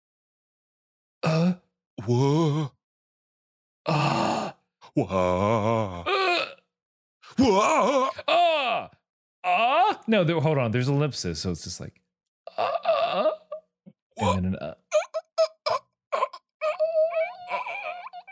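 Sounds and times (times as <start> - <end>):
human voices imitating ah and wah noises: 1.2 - 2.8, 3.9 - 6.6, 7.3 - 8.9, 14.2 - 18.2
speech: 1.5 - 2.8, 3.9 - 4.3, 5.0 - 6.4, 7.4 - 12.0, 14.2 - 15.0.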